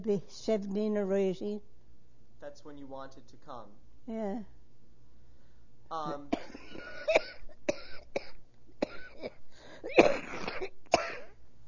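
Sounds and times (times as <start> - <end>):
speech: 0.0 - 1.7, 2.4 - 4.6, 5.9 - 7.8
harsh hacking coughing fit: 6.1 - 11.4
ragged breaths: 9.5 - 10.0.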